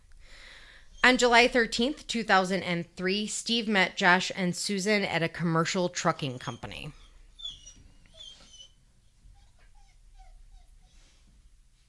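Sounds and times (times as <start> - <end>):
dog whining: 0.9 - 1.6, 6.2 - 11.2
speech: 1.1 - 7.0.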